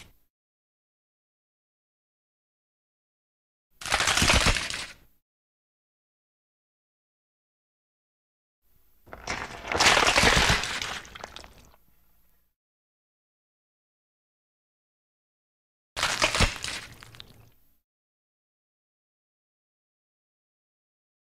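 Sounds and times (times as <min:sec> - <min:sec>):
bone breaking crack: 0:03.8 - 0:04.9, 0:09.1 - 0:11.8, 0:16.0 - 0:17.5.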